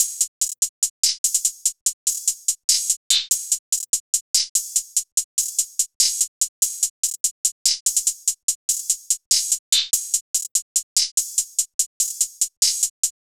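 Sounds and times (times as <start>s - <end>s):
hi-hat loop: 0.0s - 13.2s.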